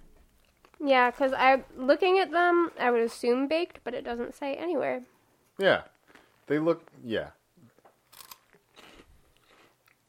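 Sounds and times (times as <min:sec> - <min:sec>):
speech: 0:00.8 - 0:05.9, 0:06.5 - 0:07.4
crunching a tomato and spinach snack: 0:07.7 - 0:10.0.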